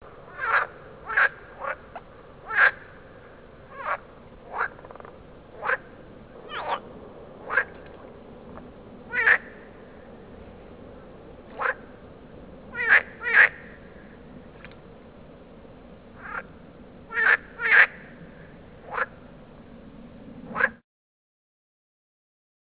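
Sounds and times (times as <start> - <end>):
marsh frog territorial call: 0.2 - 7.9, 9.1 - 10.0, 11.5 - 12.0, 12.7 - 14.2, 16.2 - 19.2.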